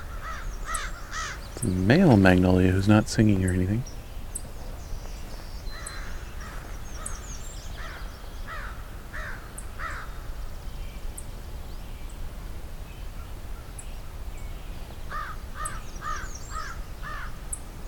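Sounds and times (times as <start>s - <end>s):
crows cawing overhead: 0.0s - 1.5s, 5.7s - 7.2s, 7.8s - 10.3s, 15.1s - 17.4s
speech: 1.6s - 3.9s.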